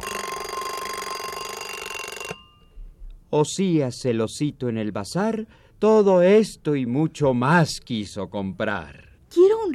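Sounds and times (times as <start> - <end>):
alarm clock bell ringing: 0.0 - 2.8
speech: 3.3 - 9.7.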